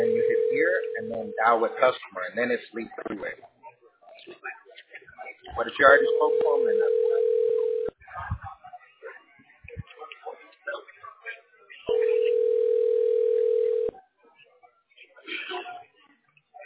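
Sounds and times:
telephone ringback tone: 0:00.0 - 0:01.4, 0:06.0 - 0:07.9, 0:11.9 - 0:13.9
faint voices and chatter: 0:00.0 - 0:16.6
speech: 0:01.4 - 0:03.5, 0:05.6 - 0:07.1.

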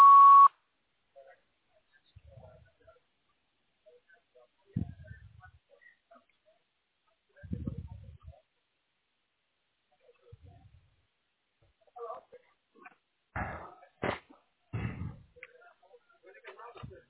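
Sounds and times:
voicemail beep: 0:00.0 - 0:00.5
faint low bursts of rumbling noise: 0:04.6 - 0:05.8, 0:07.4 - 0:08.4, 0:10.1 - 0:11.0, 0:14.8 - 0:15.4.

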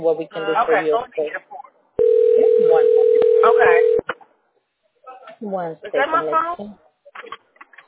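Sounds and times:
speech: 0:00.0 - 0:01.6, 0:05.4 - 0:07.4
telephone dial tone while placing a call: 0:02.0 - 0:04.0.

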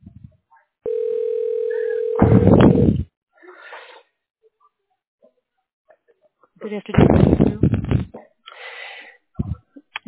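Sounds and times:
telephone dial tone: 0:00.9 - 0:02.8
speech: 0:06.7 - 0:07.5.

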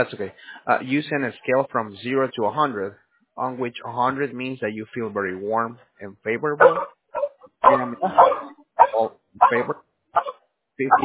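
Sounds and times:
speech: 0:00.0 - 0:06.9, 0:07.7 - 0:11.0
dog barking: 0:06.6 - 0:11.0.

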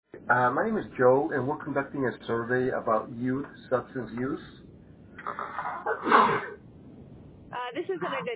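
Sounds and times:
speech: 0:00.3 - 0:04.6, 0:05.2 - 0:06.6, 0:07.7 - 0:08.3
human sneeze during a survey call: 0:05.2 - 0:06.6.

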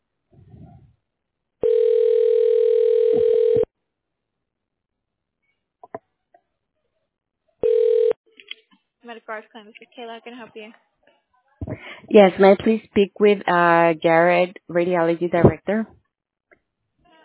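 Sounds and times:
telephone keypad tones while dialing a medical clinic's phone menu: 0:01.6 - 0:03.7, 0:07.6 - 0:08.1
speech: 0:09.2 - 0:10.9, 0:12.1 - 0:16.0.

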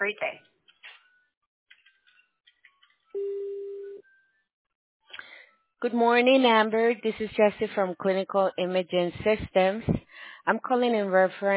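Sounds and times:
speech: 0:00.0 - 0:00.5, 0:05.8 - 0:11.5
voicemail message tone beep on a phone line: 0:03.2 - 0:04.0
faint brief phone line sounds: 0:03.2 - 0:04.2.

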